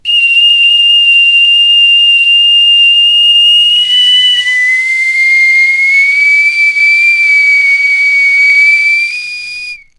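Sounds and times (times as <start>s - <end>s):
fantasy whistling: 0.0s - 9.9s.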